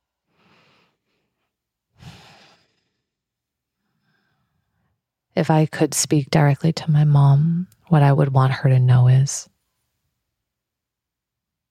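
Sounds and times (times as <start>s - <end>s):
person breathing slowly and audibly: 0.2s - 5.0s
speech: 5.4s - 9.5s.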